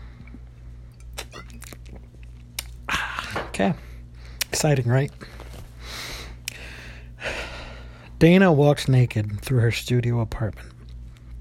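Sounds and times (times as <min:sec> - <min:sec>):
low steady hum: 0:00.0 - 0:11.3
person sipping a drink and swallowing: 0:01.0 - 0:03.3
speech: 0:03.6 - 0:03.9, 0:04.5 - 0:05.4, 0:08.2 - 0:10.8.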